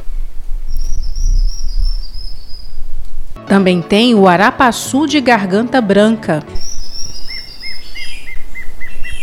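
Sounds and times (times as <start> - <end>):
low rumbling forest background in Minas Gerais, Brazil: 0.0 - 9.2
formigueiro-assobiador antbird whistled song between Serra do Cipó and Diamantina: 0.7 - 2.9, 6.5 - 9.2
speech: 3.4 - 6.6.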